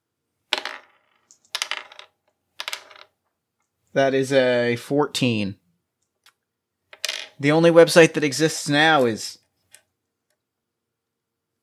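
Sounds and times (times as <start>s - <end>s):
three dice rattling and clattering across a hard surface: 0.5s - 3.1s, 6.2s - 7.4s
speech: 3.9s - 5.6s, 7.4s - 9.4s.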